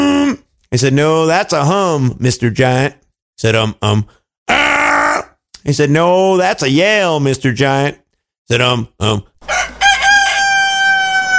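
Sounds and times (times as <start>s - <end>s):
speech: 0.7s - 4.6s, 5.6s - 9.6s
rooster crowing: 9.4s - 11.3s.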